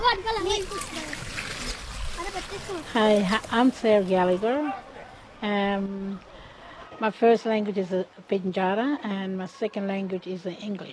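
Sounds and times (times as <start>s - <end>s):
children chattering excitedly: 0.0s - 7.2s
water poured into a planting hole for a fruit tree: 0.3s - 3.6s
speech: 2.7s - 6.3s, 7.0s - 10.9s.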